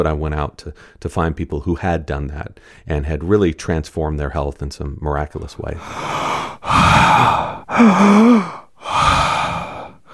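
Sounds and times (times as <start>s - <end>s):
speech: 0.0s - 9.0s
person breathing strained in an exaggerated demonstration of poor breathing: 5.8s - 10.1s.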